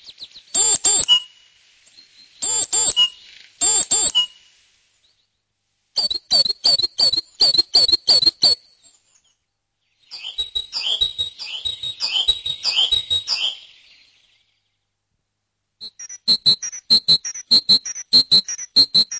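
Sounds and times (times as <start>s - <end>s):
great tit calls: 0.1s - 4.6s, 6.0s - 8.6s, 9.8s - 14.4s, 15.8s - 19.1s.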